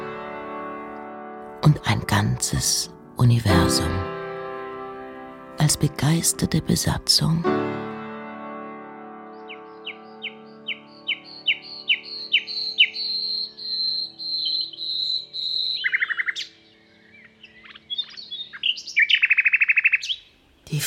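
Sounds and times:
speech: 1.6 - 4.1, 5.6 - 7.8
birds singing: 9.2 - 20.7.

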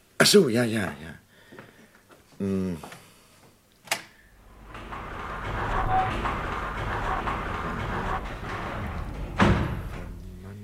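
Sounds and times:
speech: 0.3 - 1.2, 2.4 - 3.0
window blind being let down and closed: 4.4 - 10.3.

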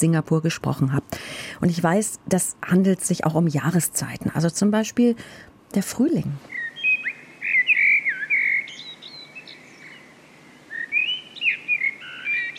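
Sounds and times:
speech: 0.0 - 6.6
fat blackbird singing in spring: 6.5 - 12.5.

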